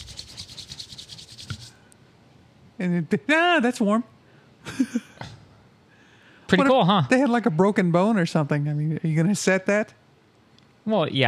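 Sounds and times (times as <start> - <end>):
hands rubbed briskly together: 0.0 - 1.8
speech: 2.8 - 4.1, 4.7 - 5.1, 6.5 - 10.0, 10.9 - 11.2.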